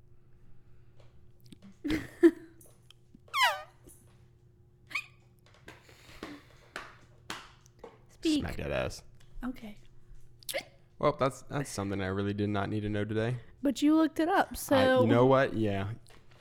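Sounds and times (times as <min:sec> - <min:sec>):
puppy yipping: 0:03.3 - 0:03.7
puppy whimpering: 0:03.3 - 0:03.8
speech: 0:08.5 - 0:09.9, 0:11.0 - 0:16.2.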